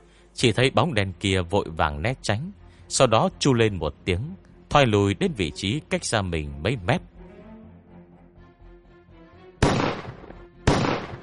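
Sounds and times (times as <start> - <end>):
speech: 0.4 - 7.1
gunshots: 9.6 - 11.2.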